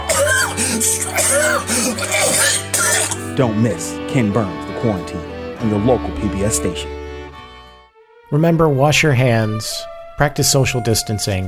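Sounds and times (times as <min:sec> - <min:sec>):
person coughing: 0:00.0 - 0:03.3
throat clearing: 0:00.1 - 0:03.2
speech: 0:00.8 - 0:02.3, 0:03.4 - 0:07.0, 0:08.3 - 0:11.4.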